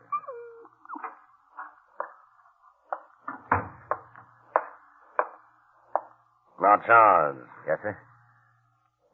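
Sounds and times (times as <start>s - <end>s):
dog whimpering with short high whining cries: 0.0s - 1.2s
speech: 6.6s - 8.1s.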